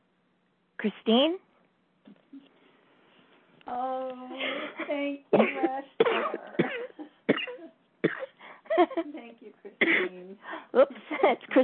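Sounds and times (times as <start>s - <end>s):
speech: 0.8s - 1.4s, 3.7s - 6.9s, 8.8s - 11.6s
harsh throaty coughs: 4.5s - 8.4s, 9.8s - 10.2s.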